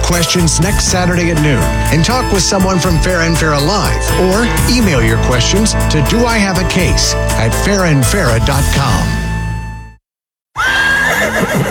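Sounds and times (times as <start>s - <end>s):
speech: 0.1s - 9.2s
horse neighing: 10.6s - 11.6s.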